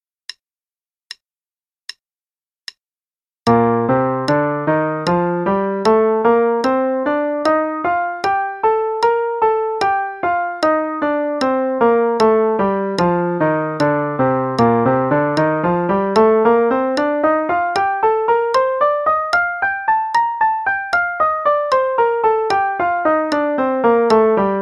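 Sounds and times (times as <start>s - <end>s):
B-flat major scale played in eighth notes and triplets: 3.5s - 24.6s.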